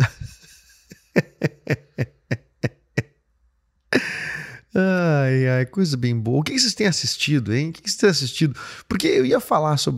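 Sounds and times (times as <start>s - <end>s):
laughter: 0.0s - 3.2s
person sniffling: 3.9s - 4.7s
breathy hissing noise: 3.9s - 4.8s
speech: 5.6s - 9.9s.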